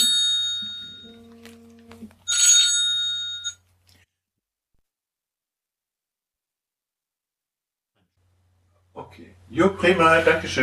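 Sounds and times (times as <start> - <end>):
electronic telephone ringtone for an incoming call: 0.0 - 3.6
speech: 9.2 - 10.6.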